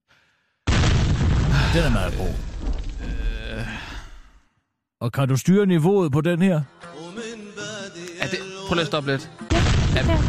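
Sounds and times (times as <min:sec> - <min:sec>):
bomb explosion sound effect: 0:00.7 - 0:03.5, 0:09.5 - 0:10.2
speech: 0:01.7 - 0:02.5, 0:05.0 - 0:06.9, 0:08.7 - 0:09.4, 0:10.0 - 0:10.2.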